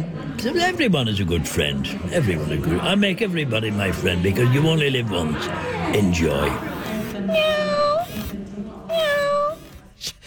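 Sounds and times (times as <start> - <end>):
speech: 0.4 - 7.8
robotic cat meowing: 7.3 - 8.3, 8.9 - 9.7.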